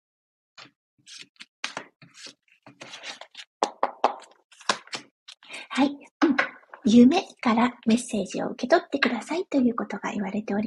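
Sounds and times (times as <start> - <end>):
speech: 0.6 - 1.4, 5.8 - 6.1, 6.9 - 10.6
oracle advice cards being shuffled and drawn: 1.1 - 5.5.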